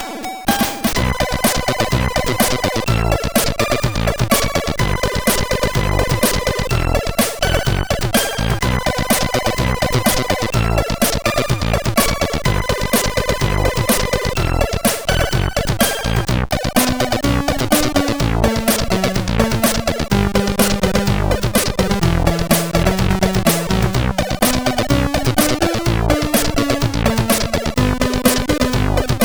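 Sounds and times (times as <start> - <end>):
intro music on a sid CSG8580R5 chip: 0.5 - 29.2.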